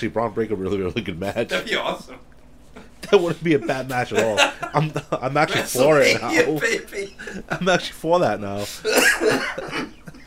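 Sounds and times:
speech: 0:00.0 - 0:02.3, 0:03.1 - 0:09.9
laughter: 0:01.3 - 0:10.2
harsh cough from a sick person: 0:08.6 - 0:10.2.

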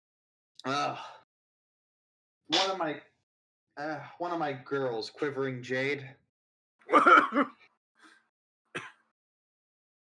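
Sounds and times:
speech: 0:00.6 - 0:01.2, 0:02.5 - 0:03.1, 0:03.8 - 0:06.2, 0:06.9 - 0:07.6
raspy voiced cough: 0:06.9 - 0:07.6, 0:08.7 - 0:09.2.

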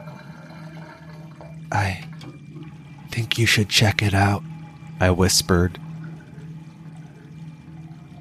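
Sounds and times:
water gurgling as it drains from a bathtub: 0:00.0 - 0:03.0, 0:05.8 - 0:08.2
speech: 0:01.7 - 0:02.4, 0:03.2 - 0:05.8.

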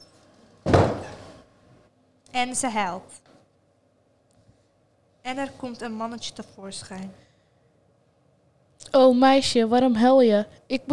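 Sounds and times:
heavy door slamming shut: 0:00.7 - 0:01.4
speech: 0:02.3 - 0:03.2, 0:05.2 - 0:07.3, 0:08.8 - 0:10.9.

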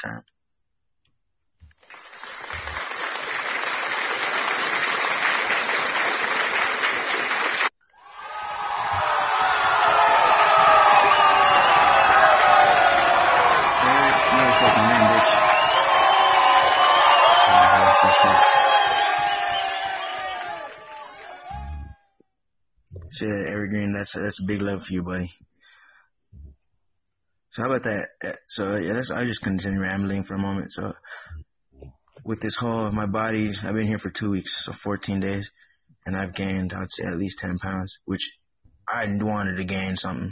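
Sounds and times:
speech: 0:00.0 - 0:00.3, 0:23.2 - 0:25.4, 0:27.6 - 0:31.1, 0:32.3 - 0:40.2
crowd applauding: 0:01.7 - 0:22.0
crowd cheering and whooping: 0:06.5 - 0:22.0.

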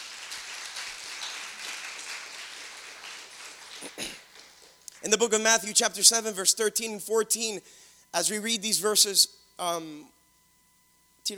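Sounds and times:
church audience applause at a morning service: 0:00.0 - 0:04.8
speech: 0:03.8 - 0:04.2, 0:05.0 - 0:10.2.

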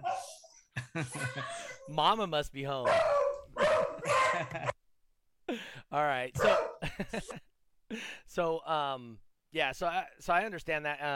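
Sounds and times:
beagle barking and yowling: 0:00.0 - 0:00.5, 0:02.8 - 0:04.8, 0:06.4 - 0:06.8
speech: 0:01.0 - 0:03.2, 0:04.0 - 0:04.7, 0:05.9 - 0:11.1.

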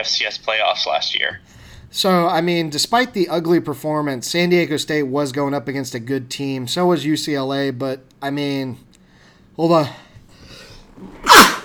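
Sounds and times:
speech: 0:00.0 - 0:08.9, 0:09.6 - 0:10.0
quiet inhale: 0:01.4 - 0:01.9, 0:09.0 - 0:10.9
person sneezing: 0:11.2 - 0:11.6.

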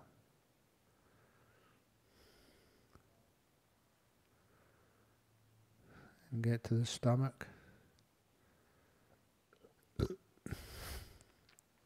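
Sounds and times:
speech: 0:06.3 - 0:07.6
soft brief burp: 0:09.5 - 0:10.6.

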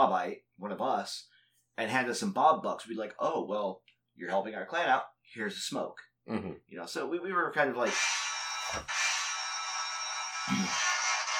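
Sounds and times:
speech: 0:00.0 - 0:09.0
mobile phone ringtone: 0:07.9 - 0:11.3.

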